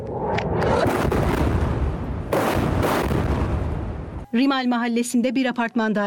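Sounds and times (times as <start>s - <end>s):
loud explosions from artillery fire: 0.6s - 4.2s
sharp artillery blast: 0.6s - 4.2s
speech: 4.4s - 6.0s.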